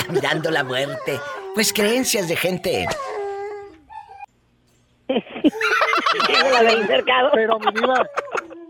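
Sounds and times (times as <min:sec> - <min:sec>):
laughter: 0:00.0 - 0:01.0, 0:05.1 - 0:08.6
dog howling: 0:00.0 - 0:04.3
speech: 0:00.1 - 0:03.2, 0:05.1 - 0:08.3.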